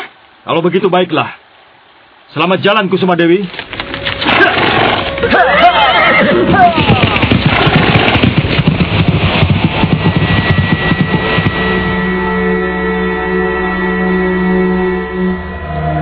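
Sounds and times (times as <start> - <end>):
dense noisy background: 0.0 - 16.0
speech: 0.4 - 1.4, 2.3 - 3.6, 5.2 - 7.2
restless horse movement: 3.4 - 11.7
horse whinnying with a shrill neigh: 3.7 - 8.1.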